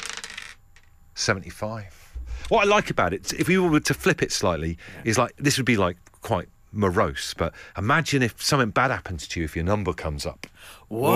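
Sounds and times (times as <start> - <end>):
dice rattling and tumbling across a hard surface: 0.0 - 0.9
speech: 1.2 - 11.1.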